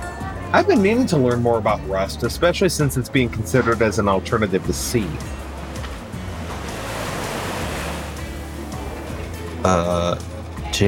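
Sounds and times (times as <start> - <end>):
speech: 0.5 - 5.4, 9.6 - 10.2
ocean waves crashing: 4.8 - 9.6.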